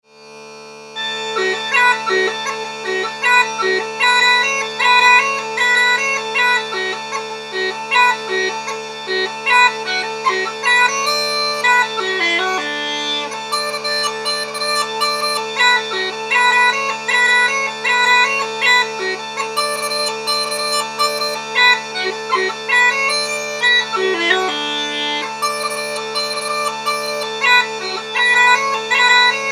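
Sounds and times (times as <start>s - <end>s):
Irish pipes playing: 1.0s - 29.4s.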